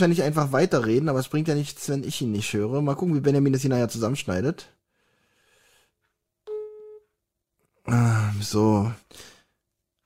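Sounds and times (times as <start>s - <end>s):
speech: 0.0s - 4.8s, 7.9s - 9.3s
buzzy electronic call tone while dialing a mobile phone: 6.5s - 7.1s.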